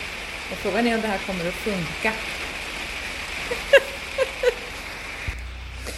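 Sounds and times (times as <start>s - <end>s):
heavy downpour of rain: 0.0s - 5.9s
sharper splashes of drops landing: 0.0s - 5.9s
speech: 0.5s - 2.5s
laughter: 3.4s - 4.9s.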